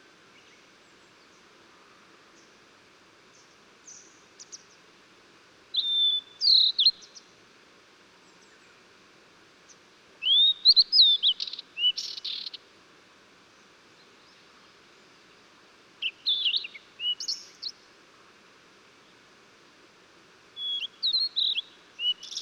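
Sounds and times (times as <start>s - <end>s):
faint steady hiss: 0.0s - 22.3s
Blue-and-white flycatcher song of clear slurred whistles and sharp high notes: 5.7s - 7.3s, 10.2s - 12.6s, 16.0s - 17.8s, 20.6s - 22.3s.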